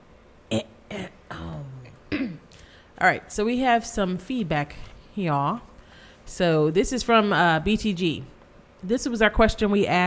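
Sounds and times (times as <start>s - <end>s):
gravelly throat clearing: 0.5s - 2.6s
speech: 3.0s - 5.7s, 6.3s - 10.0s.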